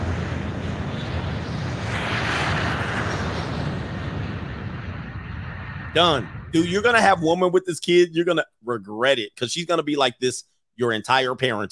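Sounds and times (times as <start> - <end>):
airplane engine starting up: 0.0 - 7.4
speech: 6.0 - 11.6.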